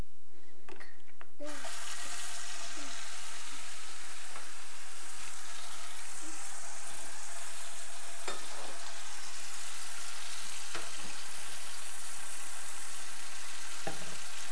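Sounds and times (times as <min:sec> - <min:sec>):
water heating up to warm a milk bottle: 0:01.3 - 0:14.4.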